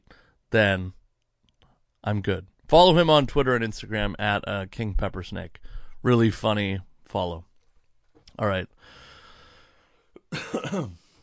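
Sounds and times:
speech: 0.5s - 1.0s, 2.0s - 7.5s, 8.4s - 9.0s, 10.3s - 11.0s
harsh throaty cough: 10.2s - 11.2s.

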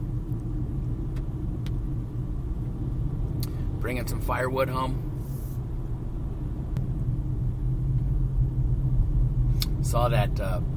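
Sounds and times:
car road rumble on Highway 101 in Northern California: 0.0s - 10.7s
speech: 3.8s - 5.1s, 9.9s - 10.7s.

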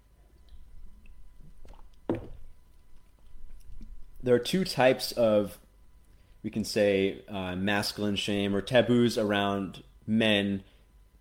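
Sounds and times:
person sipping water: 0.3s - 4.2s
speech: 4.2s - 5.6s, 6.4s - 10.7s.

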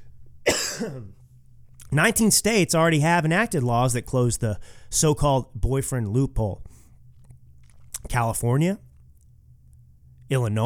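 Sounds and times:
person coughing: 0.5s - 1.2s
speech: 0.8s - 1.2s, 1.9s - 6.7s, 8.1s - 8.9s, 10.3s - 10.6s.

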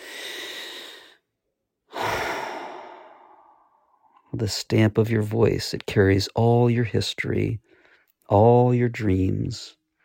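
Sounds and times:
long deep human breath during a voice exercise: 0.0s - 1.3s, 1.9s - 4.3s
speech: 4.4s - 7.7s, 8.3s - 9.8s.

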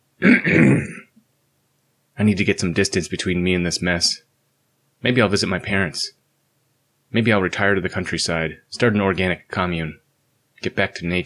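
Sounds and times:
person clearing throat: 0.2s - 1.2s
speech: 2.2s - 4.3s, 5.0s - 6.2s, 7.1s - 10.0s, 10.6s - 11.2s.

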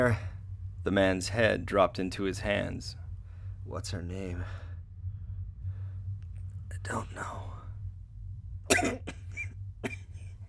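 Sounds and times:
speech: 0.0s - 3.0s, 3.7s - 4.6s, 6.8s - 7.6s, 8.8s - 9.2s
low steady hum: 0.0s - 10.4s
man coughing: 8.7s - 10.4s.

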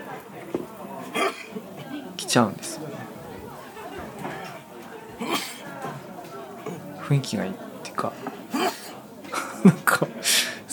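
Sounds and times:
laughter: 0.0s - 10.7s
low chatter in a busy restaurant: 0.0s - 10.7s
loud sneeze in a busy restaurant: 1.1s - 1.6s, 4.3s - 5.7s, 8.5s - 9.0s
speech: 2.3s - 2.8s, 7.1s - 8.4s.

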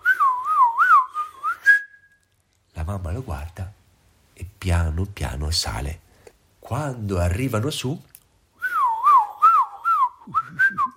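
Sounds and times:
person whistling a short lively tune: 0.0s - 2.2s, 8.6s - 10.9s
speech: 2.9s - 3.8s, 4.6s - 6.0s, 6.7s - 8.1s.

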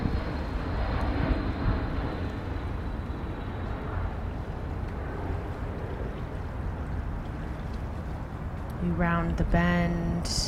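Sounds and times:
airplane engine roaring overhead coming in to land: 0.0s - 10.4s
speech: 8.9s - 10.4s.

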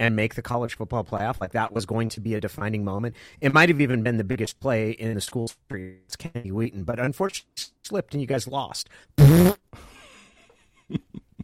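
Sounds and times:
speech: 0.0s - 9.9s, 10.9s - 11.1s
fart sound effect: 9.2s - 9.6s.

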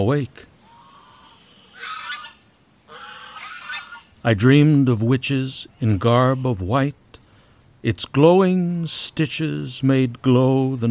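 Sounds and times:
speech: 0.0s - 0.5s, 4.2s - 7.0s, 7.8s - 10.8s
faint hiss of noise: 0.0s - 10.8s
gaggle of geese honking at the rim of a lake: 0.6s - 4.2s.

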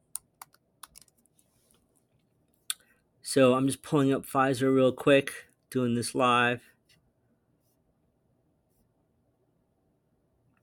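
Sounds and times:
key clicks from a computer keyboard: 0.0s - 1.3s
speech: 3.3s - 6.7s.

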